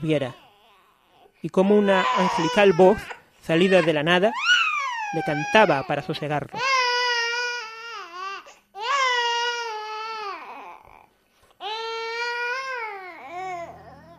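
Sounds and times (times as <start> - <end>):
speech: 0.0 - 0.4, 1.4 - 4.5, 5.1 - 6.7
baby wailing in long strained bursts: 0.2 - 14.1.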